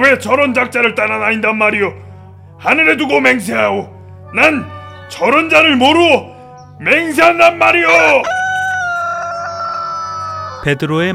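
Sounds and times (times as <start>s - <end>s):
speech: 0.0s - 8.4s, 10.6s - 11.1s
rooster crowing: 7.9s - 10.7s.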